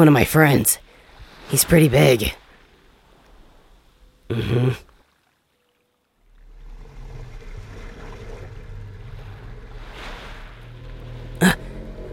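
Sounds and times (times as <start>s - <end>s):
speech: 0.0s - 0.8s, 1.5s - 2.4s, 4.3s - 4.9s, 11.4s - 11.7s
ocean waves washing: 0.0s - 5.4s, 6.0s - 12.1s
boat engine droning: 6.0s - 12.1s.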